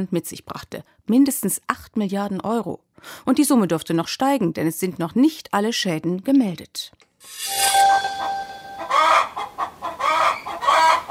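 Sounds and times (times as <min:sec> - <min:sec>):
speech: 0:00.0 - 0:07.8
chickens clucking: 0:08.8 - 0:11.0.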